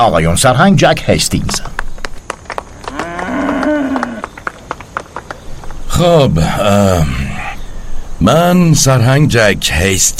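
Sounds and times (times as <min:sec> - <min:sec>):
speech: 0:00.0 - 0:01.8, 0:06.0 - 0:07.2, 0:08.2 - 0:10.1
cow mooing: 0:02.9 - 0:04.3.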